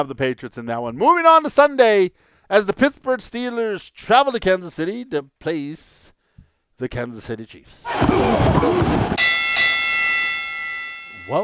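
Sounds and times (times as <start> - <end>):
speech: 0.0 - 6.2, 6.8 - 9.4, 11.3 - 11.4
bell ding: 9.2 - 11.4.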